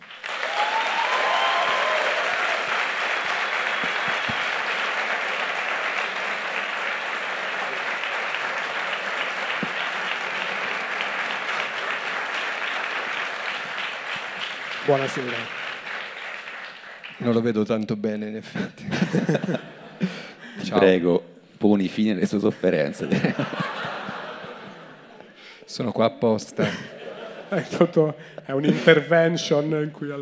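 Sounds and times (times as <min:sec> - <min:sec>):
audience applauding to welcome a guest: 0:00.0 - 0:17.6, 0:23.2 - 0:25.1
people whooping: 0:00.2 - 0:12.0
speech: 0:14.9 - 0:15.6, 0:17.2 - 0:23.7, 0:25.8 - 0:26.9, 0:27.5 - 0:30.1
laughter: 0:18.5 - 0:20.4, 0:22.2 - 0:25.4, 0:26.4 - 0:29.3.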